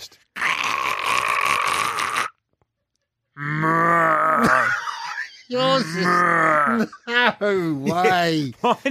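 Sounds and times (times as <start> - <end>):
person imitating a koala's grunting call: 0.3 - 2.4, 3.4 - 7.0
laughter: 4.6 - 8.8
speech: 5.5 - 8.8.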